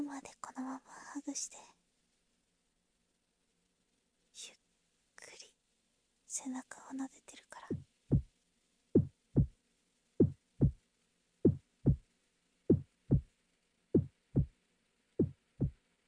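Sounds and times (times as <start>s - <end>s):
speech: 1.2s - 1.7s, 6.4s - 7.8s
slow steady heartbeat thumping: 7.7s - 8.3s, 9.0s - 9.5s, 10.2s - 10.8s, 11.5s - 12.0s, 12.7s - 13.3s, 14.0s - 14.5s, 15.2s - 15.8s.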